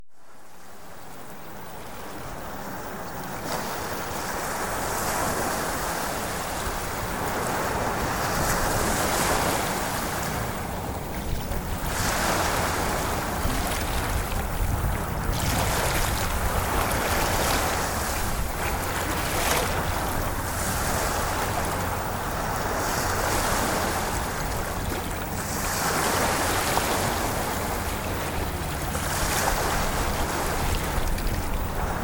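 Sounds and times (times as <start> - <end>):
ocean waves: 0.1 - 32.0.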